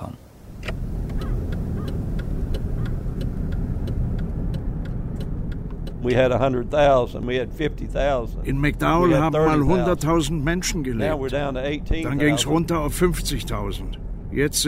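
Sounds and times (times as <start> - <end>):
car rumbling past on street: 0.0 - 14.6
faint regular ticking: 0.6 - 8.5
speech: 6.0 - 14.6.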